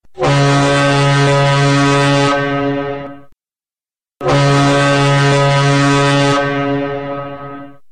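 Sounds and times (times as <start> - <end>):
cruise ship horn: 0.0 - 3.3, 4.2 - 7.9.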